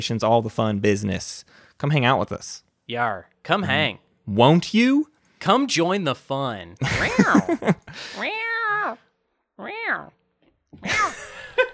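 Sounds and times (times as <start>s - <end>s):
speech: 0.0s - 9.0s, 9.6s - 11.7s
laughter: 6.8s - 8.2s, 10.8s - 11.7s
cat meowing at a person: 8.1s - 9.0s, 9.6s - 10.2s.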